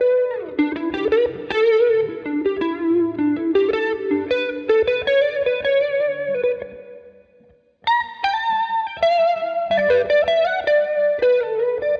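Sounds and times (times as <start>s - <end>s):
electric guitar at 80 BPM: 0.0s - 11.9s.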